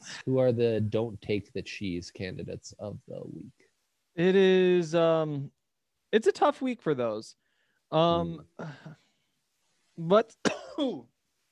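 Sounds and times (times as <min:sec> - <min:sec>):
speech: 0:00.2 - 0:03.6, 0:04.2 - 0:09.0, 0:10.0 - 0:11.1
loud rough voiced cough: 0:10.4 - 0:11.0.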